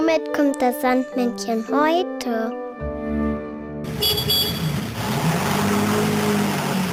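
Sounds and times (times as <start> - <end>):
speech: 0.2 - 2.6
road noise: 3.8 - 6.9
car driving with a steady rumbling engine: 3.9 - 6.9.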